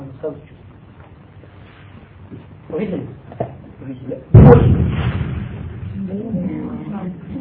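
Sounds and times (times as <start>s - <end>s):
speech: 0.2s - 0.7s, 2.3s - 5.2s
rumbling, crackling tail of a firework burst: 4.3s - 6.3s
single loud firework salute burst booming: 4.3s - 6.3s.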